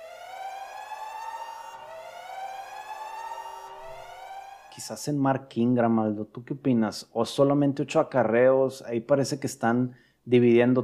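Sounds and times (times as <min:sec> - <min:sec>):
alarm siren wailing with harsh buzzy tone: 0:00.0 - 0:04.9
speech: 0:04.8 - 0:10.8.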